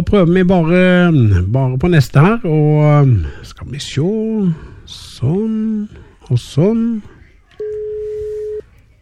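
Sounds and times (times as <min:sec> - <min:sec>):
speech: 0:00.1 - 0:07.2
telephone ringing tone on a call, mid-pitched electronic tone: 0:07.6 - 0:08.6.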